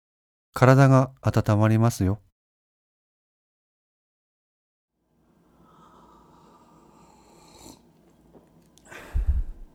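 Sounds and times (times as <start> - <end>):
speech: 0.6 - 2.3
slurping hot tea: 5.6 - 8.5.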